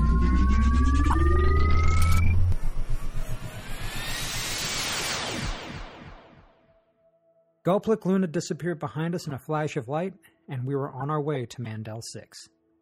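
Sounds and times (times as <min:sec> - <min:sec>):
sci-fi spaceship heavy low drone: 0:00.0 - 0:04.3
sci-fi spaceship loud sweeping whoosh: 0:00.0 - 0:06.6
sci-fi spaceship throbbing pulse: 0:00.0 - 0:06.6
sci-fi spaceship hyperspace engines rising electronic tones: 0:00.0 - 0:06.7
speech: 0:07.6 - 0:12.6.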